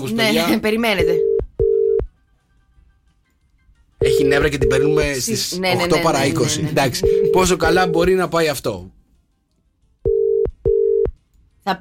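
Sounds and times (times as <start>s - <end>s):
speech: 0.0s - 1.3s, 4.1s - 9.0s
electronic telephone ringing tone of an unanswered call: 1.1s - 2.1s, 4.0s - 5.2s, 5.8s - 8.2s, 10.1s - 11.1s.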